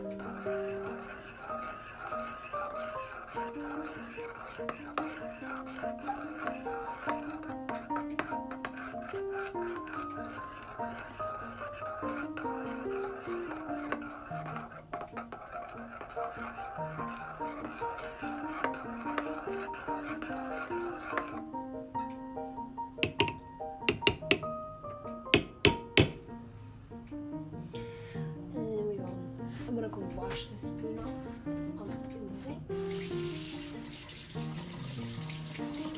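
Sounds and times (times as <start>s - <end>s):
spoon scraping a bowl while stirring a thick mixture: 0.0s - 21.6s, 23.0s - 24.6s, 25.3s - 26.2s
soft music: 0.0s - 35.9s.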